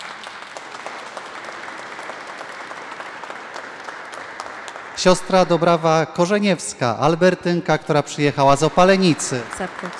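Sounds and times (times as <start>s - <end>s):
sizable audience applause: 0.0s - 6.5s, 8.5s - 9.9s
speech: 5.0s - 9.9s.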